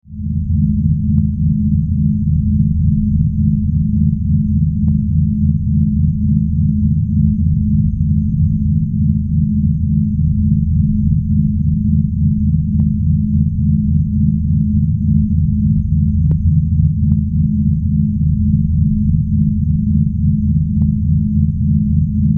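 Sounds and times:
spaceship drone hum: 0:00.0 - 0:22.3.

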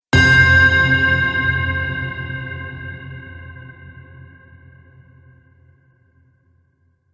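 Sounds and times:
large reverberating bell: 0:00.2 - 0:05.8.

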